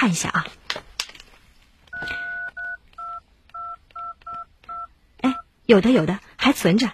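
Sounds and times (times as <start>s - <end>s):
speech: 0.0s - 0.6s, 5.7s - 6.9s
electronic telephone keypad dialing tones: 1.9s - 4.9s.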